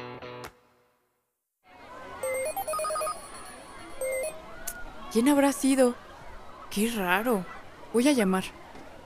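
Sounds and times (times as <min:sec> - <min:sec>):
mobile phone ringtone playing a bright electronic melody: 0:02.2 - 0:04.4
speech: 0:05.2 - 0:06.0, 0:06.7 - 0:08.6.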